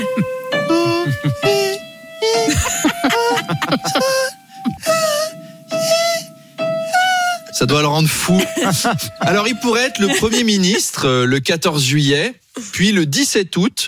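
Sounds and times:
person laughing: 0.0 - 6.3, 8.2 - 10.8
person mockingly singing warbly vocal scales: 0.0 - 7.6
speech: 7.7 - 13.8.

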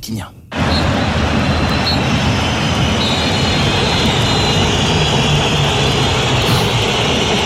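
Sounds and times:
speech: 0.0 - 0.9
piercing whistles from a stadium crowd: 0.5 - 7.4
large stadium crowd booing loudly: 0.6 - 7.4.

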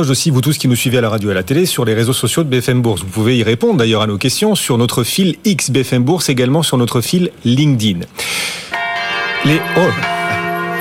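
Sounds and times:
speech: 0.0 - 8.8, 9.4 - 10.2
church bells ringing: 8.7 - 10.7.

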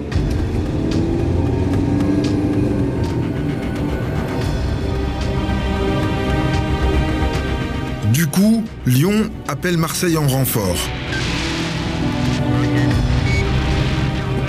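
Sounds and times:
Volkswagen Passat engine and tyre rumble driving along a road: 0.0 - 8.0, 11.5 - 14.4
speech: 8.9 - 11.3.

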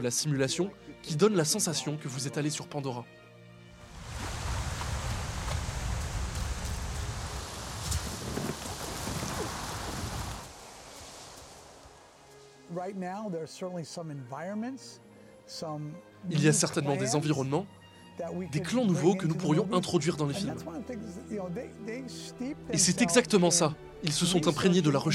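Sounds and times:
speech: 0.0 - 3.2, 12.9 - 25.1
wind tossing through leafy trees by a beach in a digital simulation: 3.7 - 12.8.

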